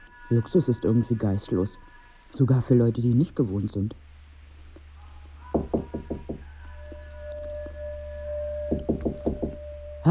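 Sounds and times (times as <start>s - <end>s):
faint steady hum: 0.0s - 10.0s
speech: 0.3s - 4.0s
rattling knocks at a locked door: 5.5s - 6.4s, 8.7s - 9.6s.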